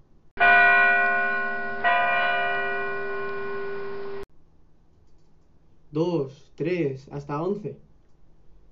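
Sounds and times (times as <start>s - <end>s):
resonant clock bell striking: 0.4s - 4.2s
speech: 6.0s - 7.9s.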